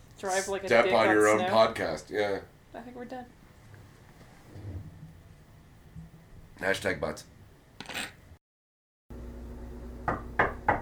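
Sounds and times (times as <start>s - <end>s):
speech: 0.2s - 3.4s, 6.6s - 7.3s
sharp knocks on a door: 10.1s - 10.8s.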